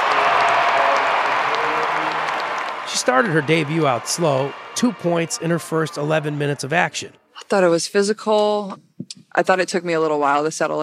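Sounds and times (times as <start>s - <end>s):
crowd cheering and applauding at a professional women's basketball game: 0.0s - 7.1s
speech: 3.1s - 10.8s.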